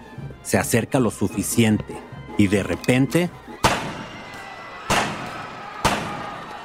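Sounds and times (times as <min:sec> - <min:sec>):
speech: 0:00.4 - 0:03.4
gunshots fired at close range at a man: 0:03.5 - 0:04.2, 0:04.8 - 0:06.4.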